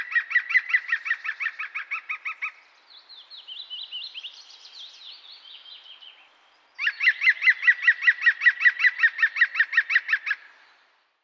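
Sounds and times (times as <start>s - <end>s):
European Green Woodpecker yaffling call: 0.0s - 2.6s, 6.8s - 10.4s.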